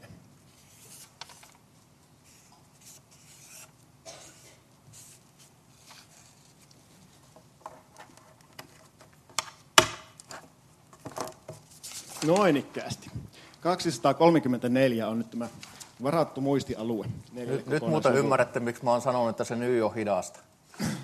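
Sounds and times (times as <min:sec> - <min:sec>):
pen writing on a small paper note: 0:02.2 - 0:03.7
speech: 0:12.2 - 0:20.5.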